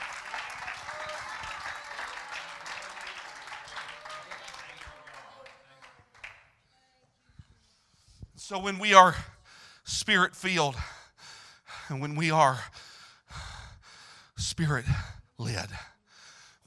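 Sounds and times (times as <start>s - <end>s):
church audience clapping: 0.0s - 6.6s
speech: 8.5s - 9.3s, 9.9s - 10.9s, 11.9s - 12.8s, 14.6s - 15.9s.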